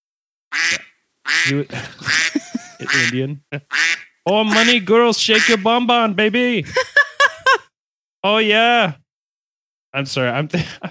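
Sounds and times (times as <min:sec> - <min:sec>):
duck quacking: 0:00.5 - 0:05.8
speech: 0:00.6 - 0:06.9, 0:08.2 - 0:09.0, 0:10.0 - 0:10.9
laughter: 0:01.4 - 0:03.8, 0:06.6 - 0:07.7, 0:10.5 - 0:10.9.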